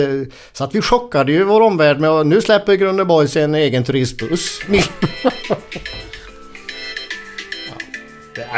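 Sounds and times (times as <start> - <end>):
speech: 0.0 - 6.0, 8.4 - 8.5
people talking and laughing: 4.3 - 6.3
mobile phone ringtone playing an electronic melody: 4.8 - 8.3.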